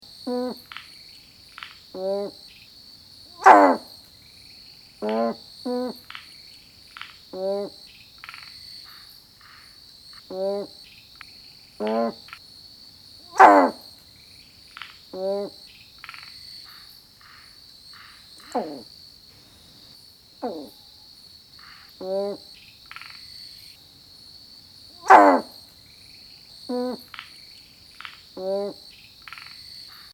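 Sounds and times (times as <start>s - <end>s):
Babina subaspera calling: 0.2s - 0.9s, 1.5s - 2.4s, 3.3s - 4.0s, 5.0s - 6.3s, 7.0s - 10.8s, 11.8s - 12.4s, 13.2s - 13.9s, 14.8s - 20.8s, 21.6s - 23.2s, 24.9s - 25.6s, 26.7s - 27.4s, 28.0s - 30.1s.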